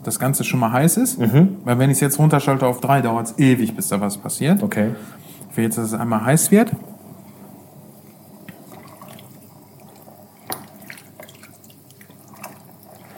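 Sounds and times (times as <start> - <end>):
speech: 0.0 - 6.9
soft hiss: 0.0 - 13.1
soup bubbling in a pot on the stove: 6.4 - 13.1.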